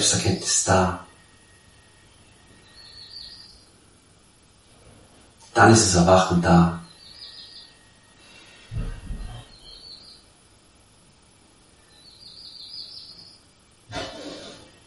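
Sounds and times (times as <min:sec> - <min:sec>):
speech: 0:00.0 - 0:01.1, 0:05.6 - 0:06.8
birds chirping: 0:00.0 - 0:03.8, 0:05.1 - 0:10.4, 0:11.8 - 0:14.4.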